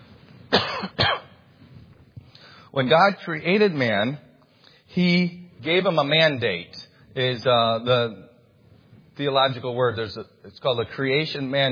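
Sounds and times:
person with a tickle in the throat clearing throat: 0.5 - 1.4
speech: 0.8 - 1.1, 2.8 - 4.3, 5.0 - 8.3, 9.2 - 11.7.

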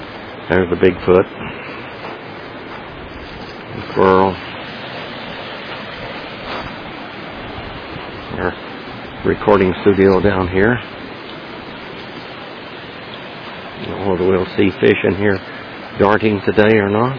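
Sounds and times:
flowing creek water rushing: 0.0 - 17.1
speech: 0.5 - 1.7, 4.0 - 4.5, 9.2 - 11.0, 14.2 - 17.1.

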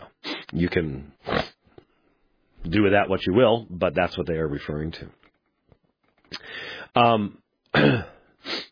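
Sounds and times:
speech: 0.5 - 1.4, 2.7 - 5.2, 7.0 - 8.1
person clearing throat: 7.7 - 8.3
person coughing: 7.7 - 8.3.

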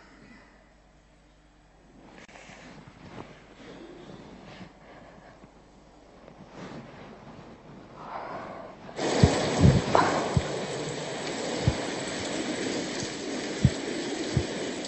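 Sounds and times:
heavy rain in a storm: 9.0 - 14.8
low thumps: 9.0 - 14.8.

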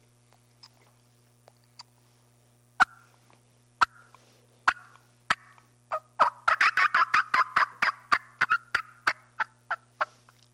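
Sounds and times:
low steady hum: 0.0 - 10.5
turkey hen fly-down cackle imitated on a turkey call by a hunter: 2.8 - 3.2, 3.8 - 10.3.

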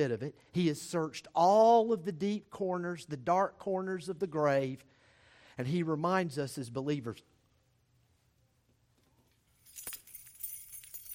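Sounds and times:
speech: 0.0 - 5.0, 5.6 - 7.3
set of keys jangling: 9.4 - 11.1.

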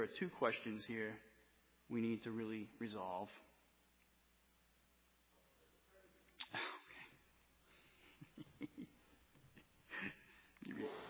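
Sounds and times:
speech: 0.0 - 1.3, 1.9 - 3.5
faint room noise: 0.0 - 11.0
person sneezing: 6.4 - 7.2, 9.9 - 11.0
breathy sniffs: 10.7 - 11.0.

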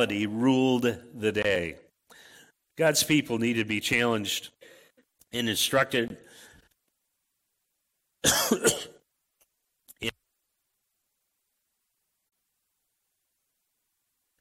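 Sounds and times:
speech: 0.0 - 1.8, 2.8 - 4.6, 5.3 - 6.4, 8.2 - 8.9
person coughing: 8.2 - 9.0.

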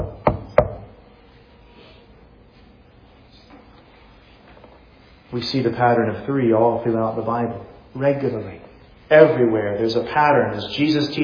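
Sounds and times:
sharp knocks on a wooden surface: 0.0 - 0.8
speech: 5.3 - 11.2.

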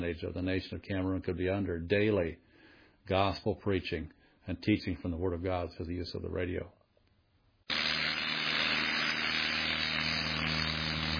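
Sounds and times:
speech: 0.0 - 6.8
propeller airplane engine droning: 7.7 - 11.1.

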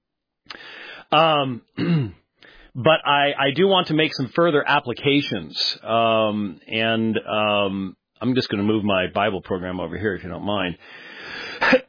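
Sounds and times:
speech: 1.1 - 2.2, 2.8 - 11.8
person coughing while preaching a church sermon: 1.8 - 2.2, 11.4 - 11.8
throat clearing from a person preaching a church sermon: 1.8 - 2.2, 11.6 - 11.8.

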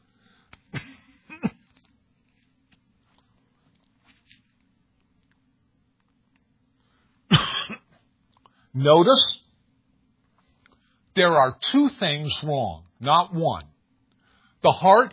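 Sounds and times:
person coughing: 0.8 - 1.7, 7.3 - 8.0
quiet rustling: 1.5 - 7.1
speech: 8.8 - 9.4, 11.2 - 13.7, 14.6 - 15.1.

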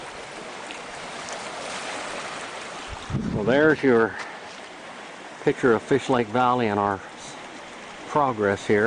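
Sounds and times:
water rushing through a very deep part of a creek: 0.0 - 8.8
speech: 3.1 - 4.3, 5.4 - 7.1, 8.1 - 8.8.

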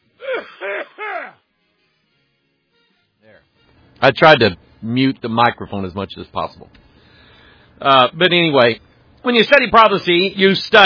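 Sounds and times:
person coughing: 0.2 - 1.4
speech: 4.0 - 6.8, 7.8 - 10.8.

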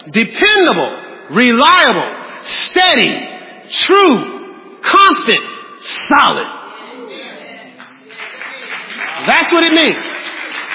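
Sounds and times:
speech: 0.1 - 6.6, 9.2 - 10.2
audience clapping: 7.7 - 10.7.

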